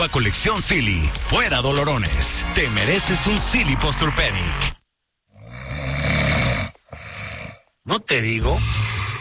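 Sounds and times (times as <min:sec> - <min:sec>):
speech: 0:00.0 - 0:04.7, 0:07.9 - 0:09.0
person snoring in bed: 0:05.3 - 0:07.7, 0:08.4 - 0:09.1.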